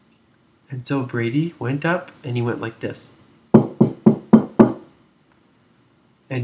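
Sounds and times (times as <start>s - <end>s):
speech: 0.7s - 3.2s
firm knocks on a wooden door: 3.5s - 4.9s.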